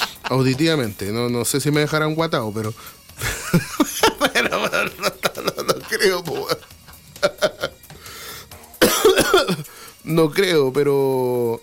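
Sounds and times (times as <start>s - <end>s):
laughter: 0.0s - 1.0s, 3.2s - 7.8s
speech: 0.3s - 3.8s, 5.9s - 6.7s, 10.1s - 11.6s
person coughing: 4.5s - 6.6s, 8.8s - 9.7s.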